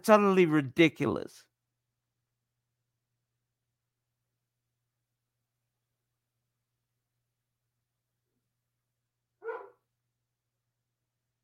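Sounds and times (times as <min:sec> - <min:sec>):
speech: 0:00.0 - 0:01.5
dog barking: 0:09.4 - 0:09.9.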